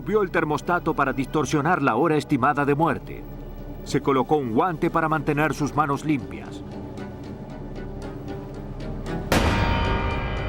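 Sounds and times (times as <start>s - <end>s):
speech: 0.0s - 6.7s
gunshot from a stolen gun: 9.3s - 10.4s.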